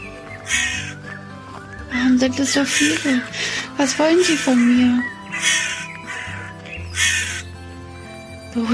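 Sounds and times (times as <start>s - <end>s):
crow cawing: 0.2s - 1.2s, 2.4s - 7.6s
speech: 2.1s - 5.6s, 8.6s - 8.7s.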